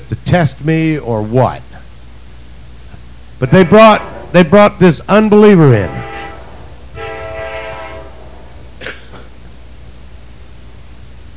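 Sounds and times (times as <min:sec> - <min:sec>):
speech: 0:00.1 - 0:01.7, 0:03.4 - 0:06.0
steady low rumble of a passing train: 0:03.0 - 0:10.2
passing train's horn blaring: 0:03.4 - 0:08.8.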